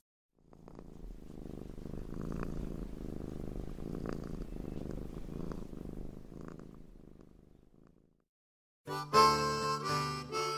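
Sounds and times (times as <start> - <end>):
domestic cat purring while being petted: 0.4 - 8.2
music: 8.9 - 10.5.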